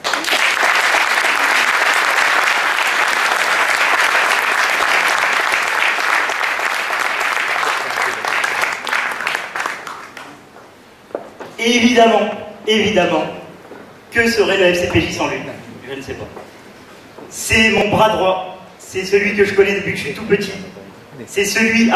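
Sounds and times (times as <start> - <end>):
audience giving an ovation at an event: 0.0 - 10.5
speech: 11.7 - 13.4, 14.1 - 16.6, 17.3 - 20.7, 21.3 - 21.9.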